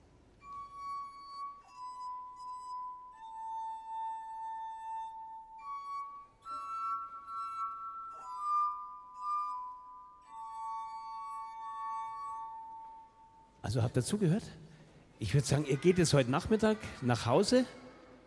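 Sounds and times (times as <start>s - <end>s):
wet fingers rubbing rims of water-tuned glasses: 0.6s - 13.4s
speech: 13.7s - 17.8s.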